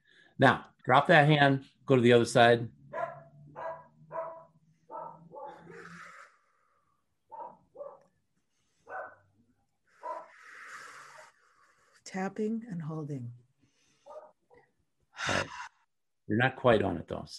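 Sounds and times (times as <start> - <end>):
speech: 0.4 - 2.8, 12.2 - 13.4, 16.3 - 17.3
dog barking: 2.9 - 5.8, 7.3 - 8.1, 8.8 - 9.2, 10.0 - 10.3, 14.0 - 14.4.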